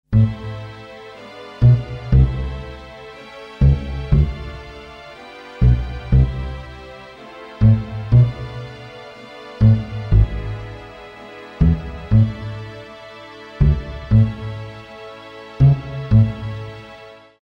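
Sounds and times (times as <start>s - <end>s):
classical bass line: 0.1s - 0.7s, 1.6s - 2.8s, 3.6s - 4.9s, 5.6s - 6.8s, 7.6s - 8.8s, 9.6s - 12.8s, 13.6s - 14.8s, 15.6s - 16.6s.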